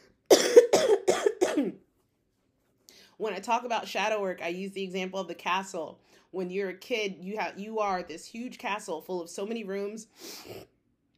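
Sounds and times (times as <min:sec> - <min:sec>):
person coughing with raspy tails: 0:00.3 - 0:01.8
speech: 0:03.2 - 0:10.7.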